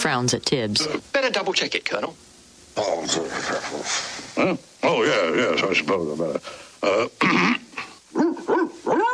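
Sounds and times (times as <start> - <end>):
speech: 0.0 - 7.6
puppy barks and a yip: 8.2 - 9.0.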